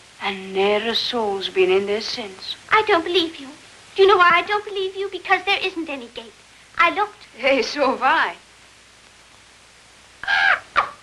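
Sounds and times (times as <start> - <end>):
speech: 0.2 - 8.4
bird giving harsh cawing calls: 10.2 - 11.0.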